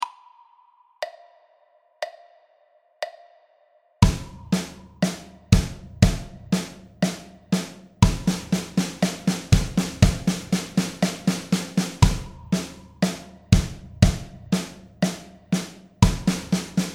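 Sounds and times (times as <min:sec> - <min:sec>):
drum: 0:04.0 - 0:16.9.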